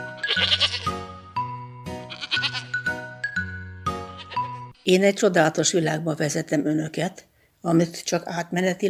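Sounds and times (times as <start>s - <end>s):
goats bleating: 0.2s - 1.0s, 2.0s - 2.9s, 3.9s - 4.6s
speech: 4.9s - 8.8s.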